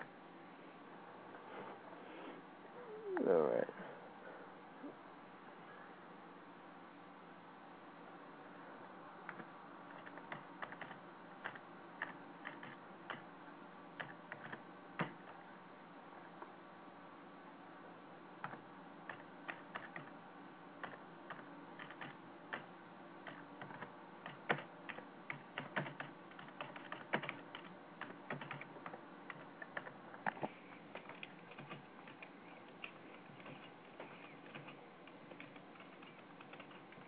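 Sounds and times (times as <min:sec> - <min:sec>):
steady low hum: 0:00.0 - 0:37.0
typing on a computer keyboard: 0:09.3 - 0:13.2, 0:14.0 - 0:15.4, 0:18.4 - 0:20.1, 0:20.8 - 0:30.0, 0:30.9 - 0:37.0.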